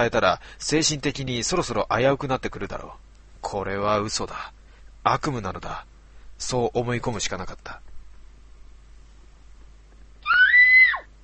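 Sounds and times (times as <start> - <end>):
speech: 0.0 - 7.9
woman screaming: 10.2 - 11.1.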